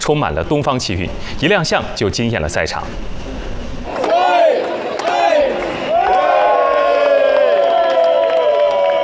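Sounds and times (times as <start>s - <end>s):
speech: 0.0s - 3.3s
spectators cheering at competition venue: 3.9s - 9.0s
rising whoops and sustained shouts: 5.4s - 9.0s.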